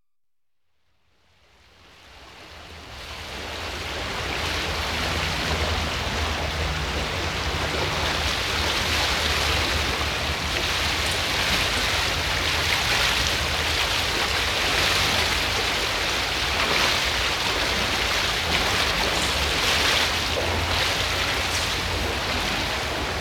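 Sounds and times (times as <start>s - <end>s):
water filling a canal lock: 3.9s - 23.1s.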